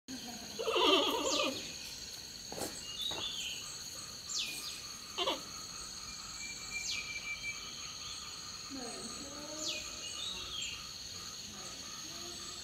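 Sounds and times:
steady high insect-like hiss: 0:00.1 - 0:12.6
panda bleat: 0:00.6 - 0:01.6.

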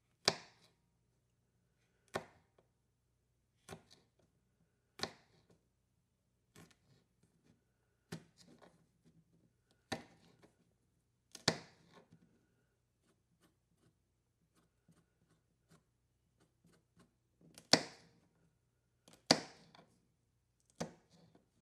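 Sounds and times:
knife cutting fruit: 0:00.1 - 0:00.8, 0:02.0 - 0:02.6, 0:03.6 - 0:04.2, 0:04.9 - 0:05.6, 0:06.5 - 0:09.1, 0:09.7 - 0:10.6, 0:11.3 - 0:12.4, 0:13.0 - 0:18.3, 0:19.0 - 0:20.0, 0:20.6 - 0:21.4.

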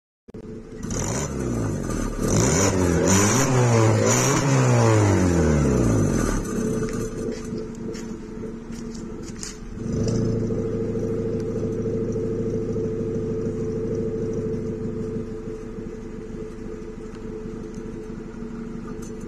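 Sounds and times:
B520 engine exhaust: 0:00.4 - 0:19.2.

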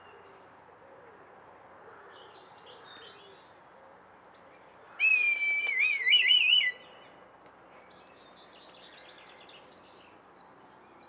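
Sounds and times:
red kite giving a loud clear whistle: 0:05.0 - 0:06.8.

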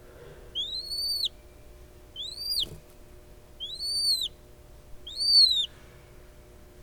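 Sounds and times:
noble snipe calling with clear whistled notes: 0:00.6 - 0:01.3, 0:02.2 - 0:02.7, 0:03.6 - 0:04.4, 0:05.1 - 0:05.7.

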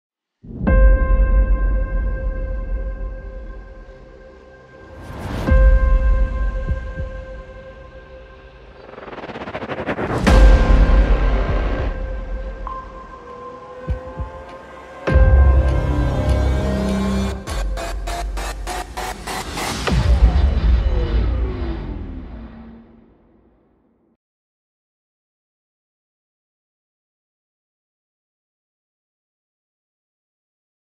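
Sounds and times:
modern cinematic music: 0:00.5 - 0:23.6.

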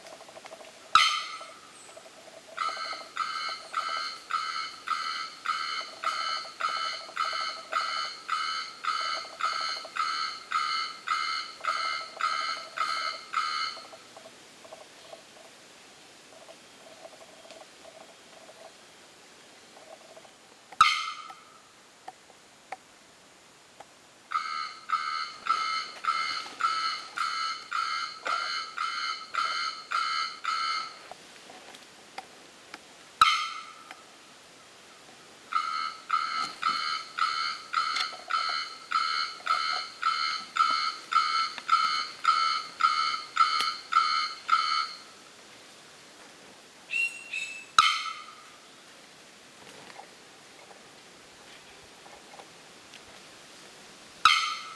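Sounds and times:
bearded bellbird calling: 0:00.9 - 0:14.2, 0:20.8 - 0:21.6, 0:24.3 - 0:31.1, 0:33.2 - 0:33.9, 0:35.5 - 0:45.1, 0:46.9 - 0:48.5, 0:54.3 - 0:54.7.

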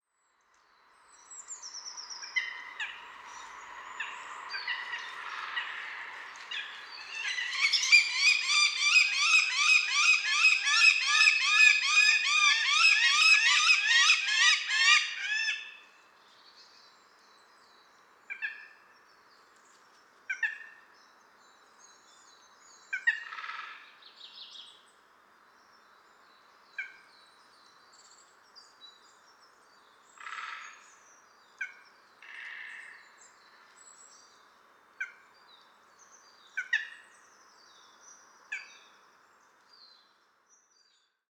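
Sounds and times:
Eurasian goshawk calling: 0:04.0 - 0:15.6.

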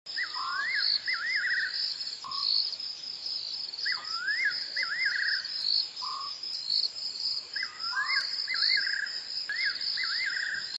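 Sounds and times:
Sykes's nightjar calling: 0:00.1 - 0:02.7, 0:03.8 - 0:06.4, 0:07.5 - 0:10.7.

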